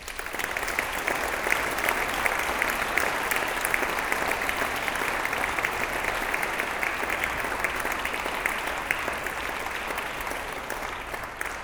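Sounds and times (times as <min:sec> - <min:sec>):
large audience applauding in a church: 0:00.0 - 0:11.6.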